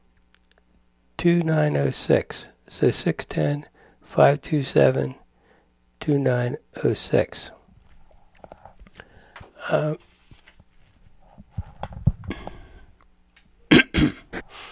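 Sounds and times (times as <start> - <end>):
speech: 1.2 - 5.2, 6.0 - 7.6, 9.7 - 10.1
faint rustling: 7.7 - 12.8
harsh coughs: 13.7 - 14.5.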